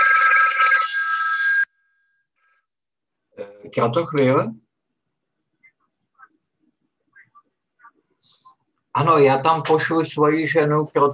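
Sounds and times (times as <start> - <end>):
mobile phone ringing with an electronic trill: 0.0 - 2.6
speech: 3.7 - 4.6, 9.0 - 11.1.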